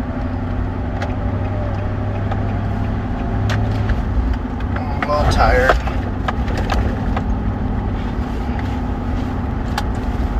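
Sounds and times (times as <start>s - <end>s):
car engine and road rumble while driving around: 0.0s - 10.3s
speech: 5.4s - 5.8s.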